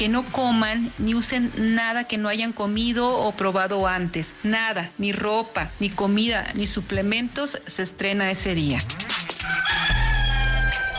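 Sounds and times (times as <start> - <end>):
speech: 0.0 - 9.7
rooster crowing: 9.4 - 10.9.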